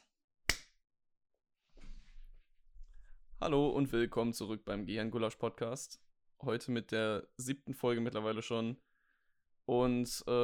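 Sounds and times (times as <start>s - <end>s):
hand clap: 0.0s - 0.7s
speech: 3.4s - 8.9s, 9.7s - 10.4s.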